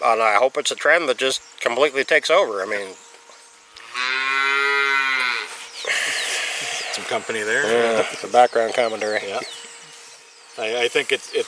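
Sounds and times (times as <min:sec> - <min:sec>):
speech: 0:00.0 - 0:03.1, 0:07.1 - 0:09.6, 0:10.6 - 0:11.4
rustling outdoor noise: 0:00.0 - 0:11.4
free-range cow mooing: 0:03.8 - 0:06.0.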